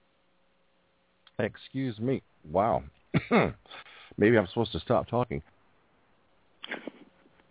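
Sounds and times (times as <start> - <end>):
speech: 1.4 - 5.5
person coughing to clear a throat tickle: 3.2 - 3.6.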